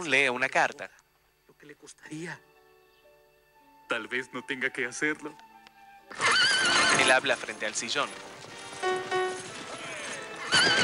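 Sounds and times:
speech: 0.0 - 1.0, 1.6 - 2.5, 3.9 - 5.5, 6.1 - 9.1, 10.6 - 10.8
horse neighing: 6.1 - 7.4, 9.8 - 10.8
horse hooves clip-clopping: 6.1 - 10.8
horse-drawn carriage wheels rumbling: 6.2 - 10.8.

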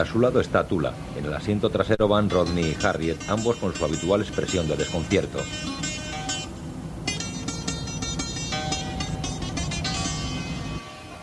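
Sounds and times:
speech: 0.0 - 5.9
car engine rumbling as the car rolls along and parks in front of a house: 0.0 - 11.2
bright tonal sounds: 2.2 - 11.2.

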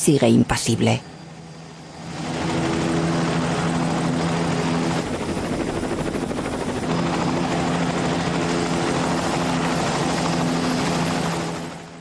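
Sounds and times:
speech: 0.0 - 1.2
helicopter rotor chopping during lift-off: 1.0 - 11.9.

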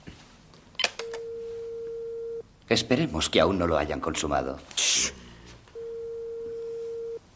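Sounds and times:
telephone ring tone over a speakerphone: 1.1 - 2.4, 5.8 - 7.2
speech: 2.7 - 5.1.

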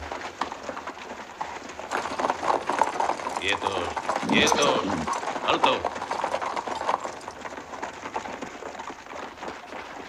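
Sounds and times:
mounted police horses' hooves clip-clopping: 0.0 - 10.0
speech: 3.4 - 6.0.

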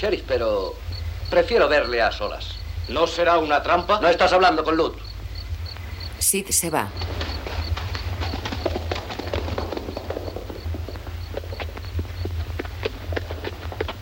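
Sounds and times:
speech: 0.0 - 5.1, 6.2 - 7.2
horse hooves clip-clopping along a deserted street: 7.0 - 13.9.

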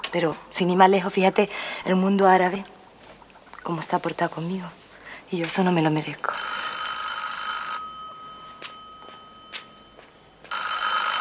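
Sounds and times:
speech: 0.1 - 2.7, 3.6 - 6.6
telephone ringing in bright electronic bursts: 6.2 - 11.1.

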